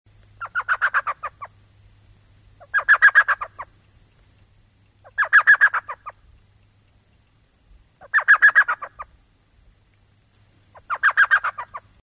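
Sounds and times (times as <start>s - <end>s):
elf owl Micrathene whitneyi calling: 0.4s - 1.7s, 2.6s - 3.9s, 5.0s - 6.3s, 8.0s - 9.2s, 10.7s - 12.0s.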